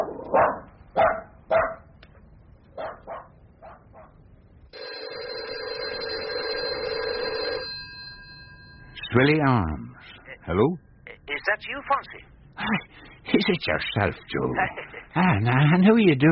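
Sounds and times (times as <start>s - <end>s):
dog barking and yipping: 0.0s - 1.9s, 2.8s - 4.2s
telephone ringing: 4.7s - 9.8s
speech: 9.2s - 9.8s, 10.5s - 10.8s, 11.6s - 12.8s, 13.4s - 16.2s.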